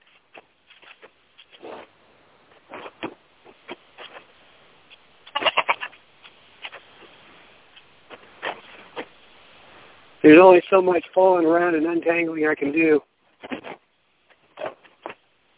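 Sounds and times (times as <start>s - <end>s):
shuffling sounds: 0.0s - 5.1s, 5.9s - 10.0s
goat bleating as it is brought back to its pen: 5.3s - 6.0s
speech: 10.3s - 13.1s.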